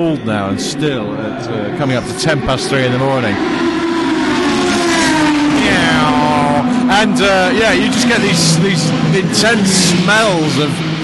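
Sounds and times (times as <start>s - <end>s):
speech: 0.0s - 4.0s, 5.6s - 11.0s
Corvette race car engine accelerating away from pits: 0.0s - 11.0s.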